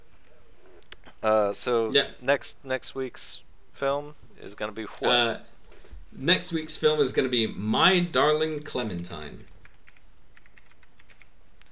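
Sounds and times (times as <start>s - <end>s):
speech: 1.2s - 5.5s, 6.1s - 9.5s
quick light typing on a computer keyboard into a chat: 9.4s - 11.4s.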